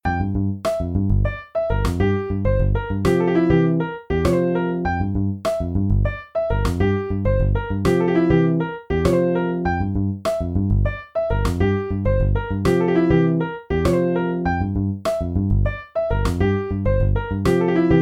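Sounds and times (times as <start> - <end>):
bass claps: 0.2 - 3.6, 4.2 - 13.2, 13.8 - 17.9.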